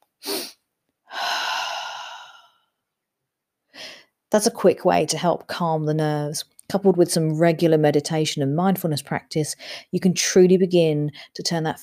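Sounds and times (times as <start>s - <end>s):
long breathy exhale through the mouth of a physiological sigh: 0.2s - 2.6s
short sharp nasal inhale of a physiological sigh: 0.2s - 2.7s
speech: 4.4s - 11.8s.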